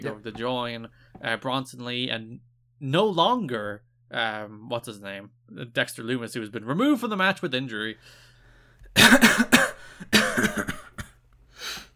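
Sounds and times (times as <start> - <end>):
speech: 0.0 - 8.3, 9.0 - 9.4
harsh hacking coughs: 9.0 - 11.2.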